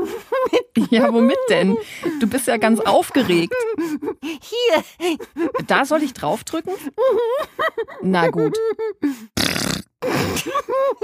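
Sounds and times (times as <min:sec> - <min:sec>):
laughter: 0:00.0 - 0:09.0, 0:10.0 - 0:11.0
speech: 0:00.8 - 0:11.0
novelty fart machine gadget fart noises: 0:09.4 - 0:10.4.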